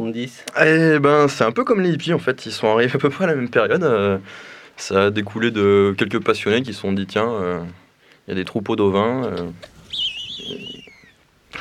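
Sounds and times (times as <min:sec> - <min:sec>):
speech: 0:00.1 - 0:10.6
bearded vulture call: 0:09.9 - 0:11.2.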